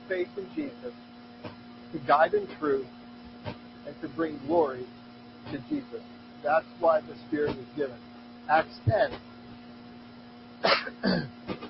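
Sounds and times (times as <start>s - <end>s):
speech: 0.1s - 9.3s, 10.6s - 11.3s
man coughing: 10.6s - 11.6s.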